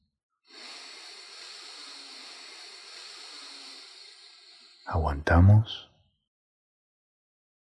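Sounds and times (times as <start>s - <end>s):
deep inhale through the nose during a guided breathing exercise: 0.4s - 4.9s
speech: 4.9s - 5.9s.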